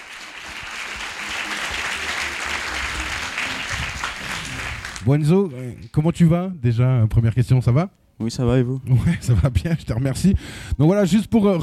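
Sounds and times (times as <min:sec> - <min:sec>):
crowd applauding: 0:00.0 - 0:05.9
speech: 0:05.0 - 0:11.6.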